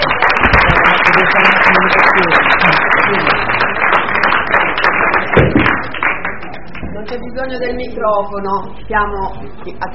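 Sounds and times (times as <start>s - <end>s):
audience applause at the close of a talk: 0.0s - 6.7s
murmur of voices: 0.0s - 9.9s
speech: 7.4s - 9.9s.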